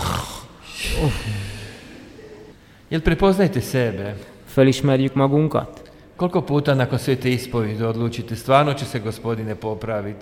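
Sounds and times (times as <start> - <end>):
snoring: 0.0 - 1.4
speech: 1.0 - 1.5, 2.9 - 10.2.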